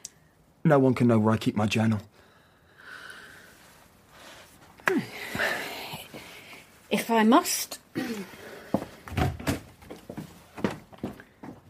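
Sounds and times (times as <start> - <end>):
speech: 0.6 - 2.1, 7.1 - 8.4
woman's footsteps across the floor: 8.7 - 11.6.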